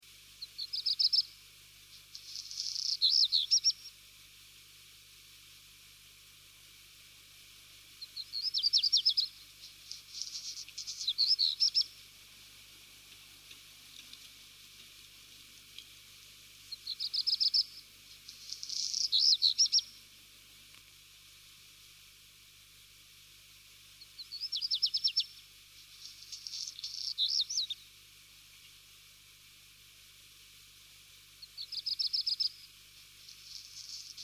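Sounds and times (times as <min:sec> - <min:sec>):
black redstart singing: 0:00.4 - 0:01.4, 0:02.2 - 0:04.0, 0:08.0 - 0:12.0, 0:16.7 - 0:20.0, 0:24.0 - 0:25.4, 0:26.0 - 0:27.9, 0:31.4 - 0:32.7.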